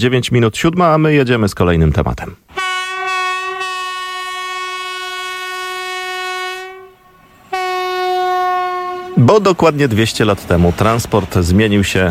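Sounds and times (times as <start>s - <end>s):
speech: 0.0s - 2.6s, 9.3s - 12.1s
train horn multi-tone blast: 2.5s - 9.6s.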